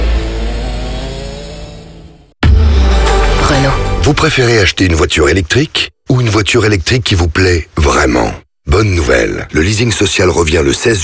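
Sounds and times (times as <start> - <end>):
bioethanol-powered go-kart engine at full throttle on a karting track: 0.0 - 3.2
speech: 4.1 - 11.0.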